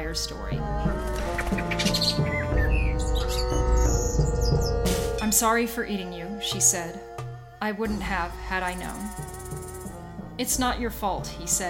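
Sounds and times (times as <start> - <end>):
speech: 0.1 - 0.9, 5.3 - 9.4, 10.4 - 11.6
bird chirping and calling: 1.0 - 5.4.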